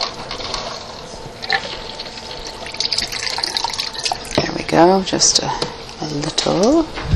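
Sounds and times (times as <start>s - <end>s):
water poured into a bowl of cracked eggs: 1.4s - 4.5s
speech: 4.7s - 7.0s.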